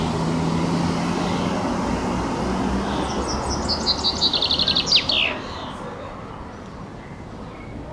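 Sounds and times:
male common chaffinch song: 0:00.0 - 0:07.9
steady low engine-like hum: 0:00.0 - 0:07.9.

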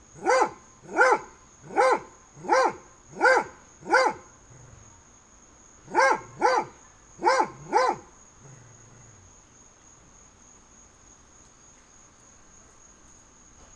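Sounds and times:
faint steady high hum: 0:00.0 - 0:13.7
dogs barking through a fence on a summer day: 0:00.2 - 0:04.3, 0:05.9 - 0:08.1.

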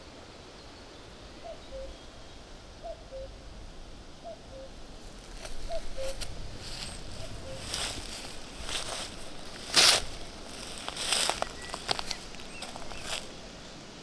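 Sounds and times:
common cuckoo giving falling two-note calls: 0:01.4 - 0:02.2, 0:02.8 - 0:03.4, 0:04.2 - 0:04.8, 0:05.4 - 0:13.4
rustling: 0:05.1 - 0:13.4.

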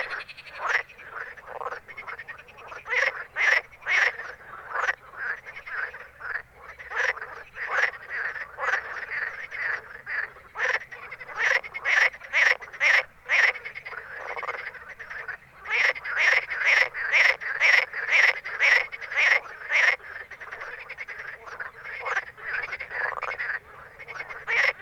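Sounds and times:
frogs croaking in a dense chorus at night in Ruaudin: 0:00.0 - 0:24.7.

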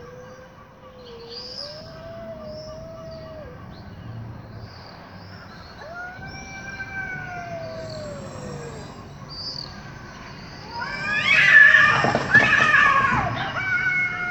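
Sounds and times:
cats yowling: 0:00.0 - 0:14.3
cats screeching in a catfight scuffle: 0:05.8 - 0:14.3.

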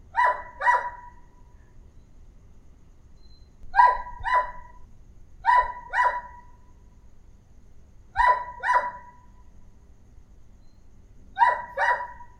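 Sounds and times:
faint low hum: 0:00.0 - 0:12.3
small-sized dog barking in quick doubled barks: 0:00.1 - 0:01.2, 0:03.7 - 0:04.8, 0:05.4 - 0:06.6, 0:08.1 - 0:09.3, 0:11.4 - 0:12.3.

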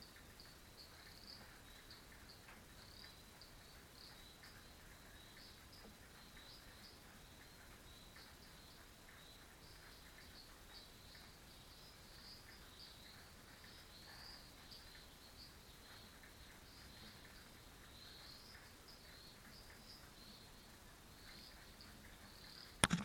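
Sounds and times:
frogs chorusing at a dam: 0:00.0 - 0:23.0
sharp knock: 0:22.8 - 0:23.0.

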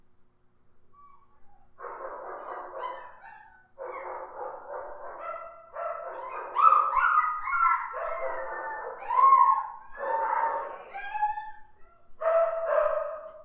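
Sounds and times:
dogs whimpering and whining: 0:00.9 - 0:01.8, 0:02.4 - 0:04.5, 0:05.6 - 0:12.2
dogs barking: 0:01.8 - 0:11.6, 0:12.2 - 0:13.4.

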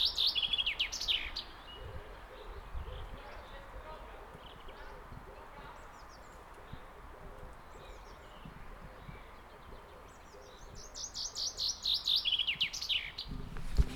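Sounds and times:
common chaffinch song of bright notes stepping down in pitch: 0:00.0 - 0:13.9
low thump: 0:13.3 - 0:13.9.

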